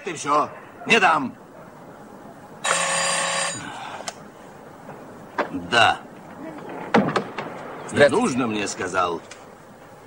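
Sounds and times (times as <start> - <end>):
speech: 0.0 - 1.4, 5.5 - 6.1, 7.9 - 9.3
telephone bell ringing in a port office: 2.6 - 3.6.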